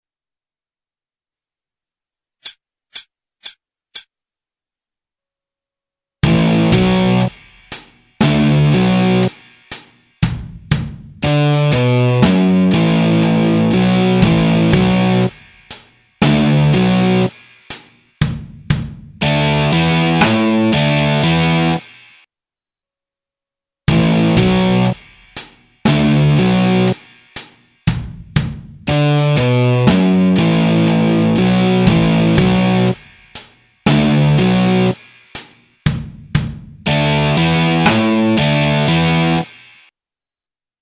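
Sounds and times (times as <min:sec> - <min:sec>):
backing track for a guitar solo: 0:06.2 - 0:22.2, 0:23.9 - 0:39.8.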